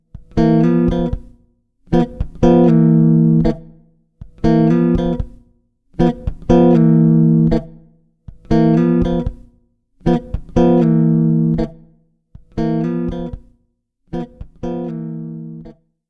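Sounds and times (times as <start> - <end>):
electric guitar chords in stereo with eq: 0.2 - 1.2, 1.9 - 3.7, 4.4 - 5.3, 6.0 - 7.7, 8.5 - 9.4, 10.1 - 11.8, 12.6 - 13.4, 14.2 - 15.7.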